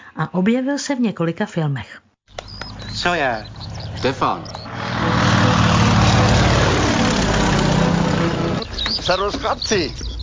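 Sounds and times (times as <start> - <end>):
speech: 0.2 - 2.0, 3.0 - 4.6, 9.1 - 10.1
propeller engine of Czechoslovak crop-dusting airplane droning: 2.3 - 8.8.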